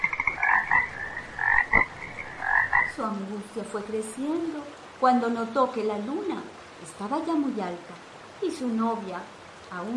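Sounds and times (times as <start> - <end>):
frogs croaking by a river: 0.0 - 3.4
speech: 3.0 - 9.9.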